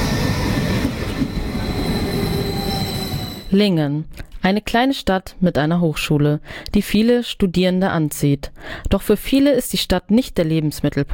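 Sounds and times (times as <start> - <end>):
regional train wheels rumbling on rails pulling into a station: 0.0 - 3.5
thin metallic squeal of regional train pulling into a station: 0.3 - 3.6
speech: 3.5 - 11.1.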